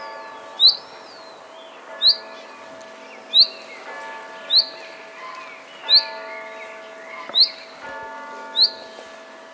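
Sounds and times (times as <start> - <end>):
soft bird sounds: 0.2 - 9.3
common chaffinch calling: 0.6 - 1.4, 2.0 - 2.4, 3.1 - 7.8, 8.5 - 9.0.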